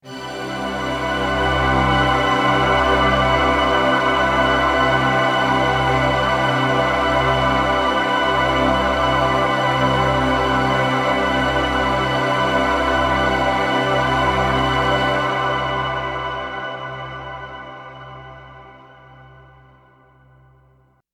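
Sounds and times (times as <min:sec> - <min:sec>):
poly pad with pitch shift doubler: 0:00.1 - 0:20.1.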